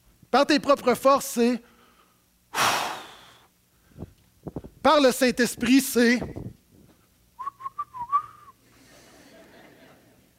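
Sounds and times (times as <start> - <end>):
faint noise: 0.0 - 10.3
speech: 0.3 - 1.7, 4.8 - 6.4
person attempting to whistle with a wobbly breathy tone: 7.4 - 8.6
laughter: 8.8 - 10.3.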